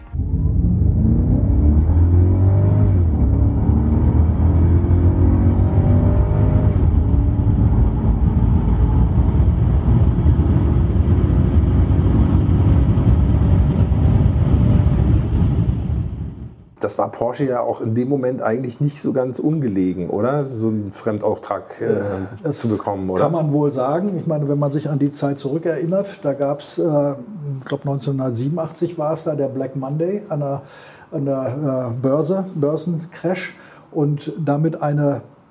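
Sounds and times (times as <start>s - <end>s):
Mercedes 500E V8 car engine accelerating: 0.0s - 16.6s
speech: 16.8s - 35.3s.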